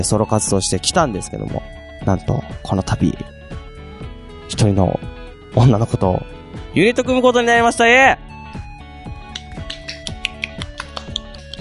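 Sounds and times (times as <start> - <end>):
speech: 0.0 - 3.3, 4.5 - 8.3
single person clapping hands: 9.2 - 11.5.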